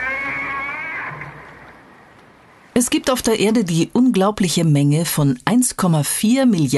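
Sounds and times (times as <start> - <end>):
humpback whale song moan: 0.0 - 1.5
speech: 2.8 - 6.7.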